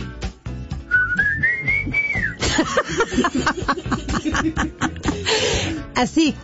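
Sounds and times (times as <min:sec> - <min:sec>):
person whistling a tune: 0:00.8 - 0:02.4
chuckling: 0:02.4 - 0:05.6
speech: 0:02.6 - 0:04.9, 0:06.0 - 0:06.4.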